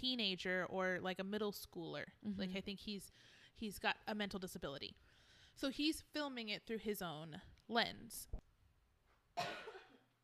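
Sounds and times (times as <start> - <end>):
speech: 0.0 - 5.0, 5.6 - 8.4, 9.4 - 9.7
single sharp raspy cough: 9.4 - 10.1.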